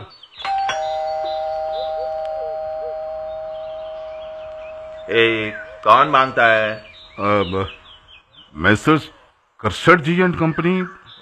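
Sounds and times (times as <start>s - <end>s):
doorbell chimes: 0.4s - 6.8s
electric doorbell ringing tone: 0.4s - 6.8s
speech: 5.1s - 7.8s, 8.6s - 11.0s.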